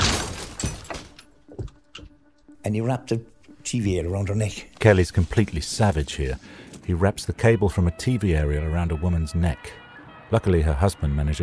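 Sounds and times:
clinks and thuds of falling glass shards: 0.0s - 1.2s
man smashing a glass door inside a house in Reading near London: 0.0s - 1.3s
speech: 2.6s - 11.4s.

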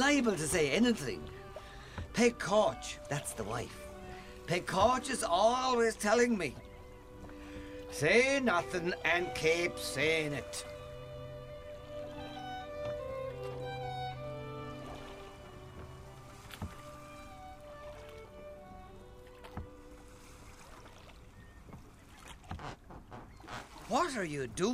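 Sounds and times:
sea water lapping and sloshing against a small boat: 0.0s - 24.7s
speech: 0.1s - 1.4s, 2.2s - 3.8s, 4.5s - 6.7s, 7.9s - 10.7s, 23.9s - 24.7s
sharp knocks and creaks from a small boat hull: 15.7s - 17.1s, 21.4s - 23.9s.

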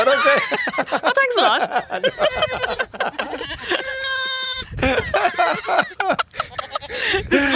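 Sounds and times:
laughter: 0.0s - 7.5s
speech: 0.1s - 2.4s
goats bleating: 2.1s - 4.7s, 6.3s - 7.1s.

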